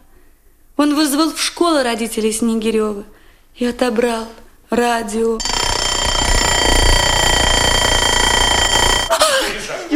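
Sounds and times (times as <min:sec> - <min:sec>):
speech: 0:00.8 - 0:05.5
alarm clock ringing with harsh metallic jangle: 0:05.4 - 0:09.2.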